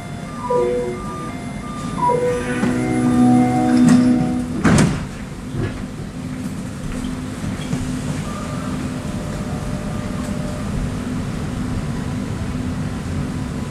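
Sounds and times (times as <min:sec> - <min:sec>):
light-rail train automated door chime at Central Station in Montreal: 0:00.0 - 0:05.3, 0:08.2 - 0:10.8
light-rail train rumbling as it departs: 0:00.0 - 0:13.6.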